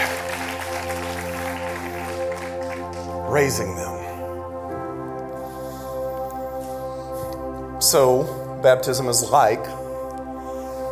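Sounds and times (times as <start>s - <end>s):
congregation applauding: 0.0s - 3.7s
sustained keyboard or organ chord: 0.0s - 10.9s
speech: 3.4s - 4.0s, 7.8s - 9.8s.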